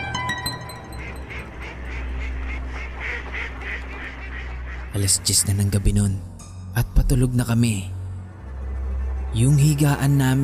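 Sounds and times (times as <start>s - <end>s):
flock of ducks quacking at night beneath a house: 0.7s - 5.8s
speech: 5.0s - 8.0s, 9.3s - 10.4s.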